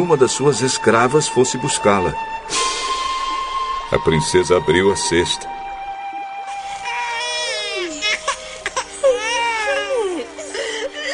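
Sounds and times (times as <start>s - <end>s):
speech: 0.0s - 2.8s, 3.9s - 5.6s
baby boy crying in a basket among reeds by a river: 6.4s - 11.1s.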